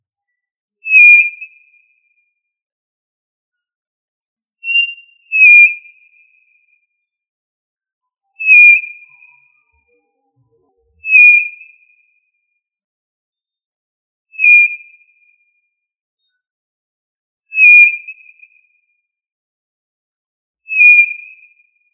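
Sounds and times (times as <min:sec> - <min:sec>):
tinamou giving clear slightly falling whistles: 0:00.9 - 0:01.4, 0:04.6 - 0:05.8, 0:08.4 - 0:09.9, 0:11.0 - 0:11.7, 0:20.7 - 0:21.1.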